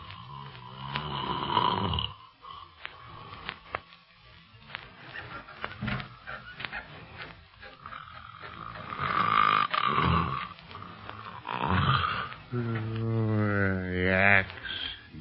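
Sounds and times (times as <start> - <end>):
sleeping man snoring loudly: 0.0 - 3.5, 7.8 - 15.0.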